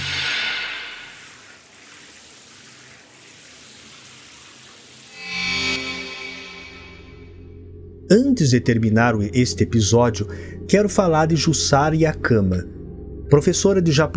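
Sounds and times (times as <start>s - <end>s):
shower running at full blast: 0.0s - 6.1s
speech: 8.1s - 14.1s.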